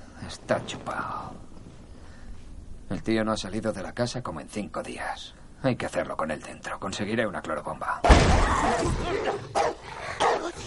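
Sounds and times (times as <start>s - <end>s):
speech: 0.3s - 1.5s, 2.9s - 9.7s
Rottweiler barking at a car: 9.2s - 10.6s.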